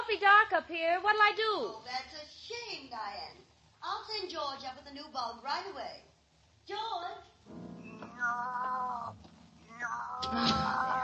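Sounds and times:
speech: 0.2s - 6.1s, 6.7s - 11.0s
cat meowing in the dark: 7.9s - 11.0s.

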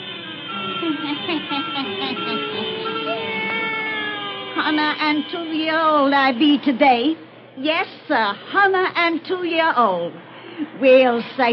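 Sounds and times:
steady hum: 0.0s - 11.5s
laughter: 0.8s - 3.6s
black cat meowing: 2.2s - 5.2s
speech: 4.7s - 11.5s.

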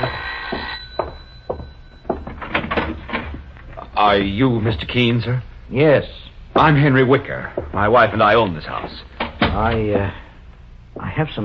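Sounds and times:
faint steady hum: 0.0s - 11.4s
house front door rattling as it swings: 2.1s - 3.5s, 8.8s - 10.0s
speech: 4.0s - 10.2s, 11.0s - 11.4s.

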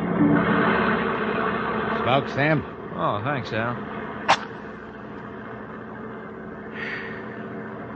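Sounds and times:
armored truck engine drone on the move: 0.0s - 7.9s
speech: 2.1s - 3.9s
sharp rustle: 4.3s - 4.6s.

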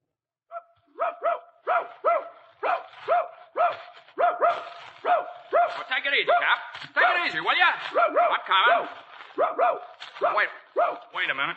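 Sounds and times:
dog barking excitedly: 0.5s - 11.2s
speech: 6.1s - 11.5s.

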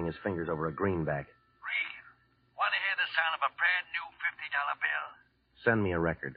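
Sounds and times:
telephone ringing with a warbling trilling tone: 0.0s - 5.0s
speech: 0.1s - 1.9s, 3.2s - 6.3s.

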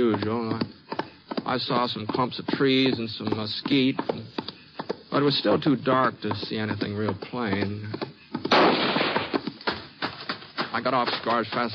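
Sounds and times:
speech: 0.0s - 0.8s, 1.5s - 4.4s, 5.1s - 9.0s, 10.8s - 11.7s
gunshots in a canyon: 8.5s - 9.4s.

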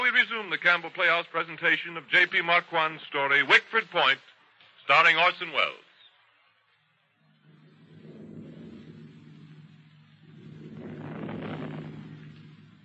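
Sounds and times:
speech: 0.4s - 4.3s, 4.9s - 5.9s
distant thunder rumbling: 7.2s - 12.8s.

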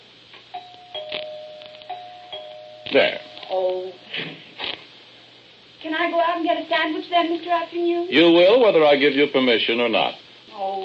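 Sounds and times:
doorbell ringing: 0.6s - 4.0s
speech: 2.9s - 4.4s, 5.8s - 10.8s.

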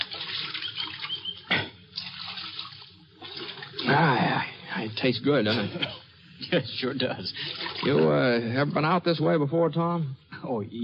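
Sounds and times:
creek water splashing as riders drink: 0.0s - 5.1s, 6.8s - 8.3s
running creek water: 0.0s - 9.0s
speech: 3.9s - 10.8s.

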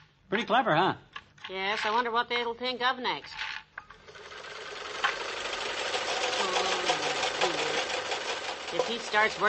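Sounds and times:
speech: 0.3s - 3.5s, 8.7s - 9.4s
sewing machine winding thread onto a small bobbin: 3.9s - 9.4s.

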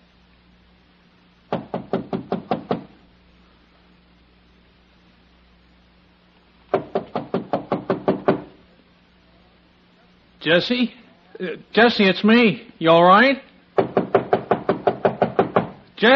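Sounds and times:
faint steady hum: 0.0s - 16.1s
rapid knocking on an apartment door: 1.5s - 3.0s, 6.7s - 8.6s, 13.8s - 15.8s
speech: 10.4s - 13.5s, 16.0s - 16.1s.

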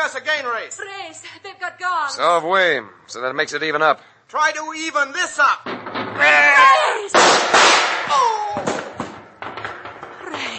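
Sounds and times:
speech: 0.1s - 8.7s
gunshots in a radio drama shootout: 7.1s - 9.2s.

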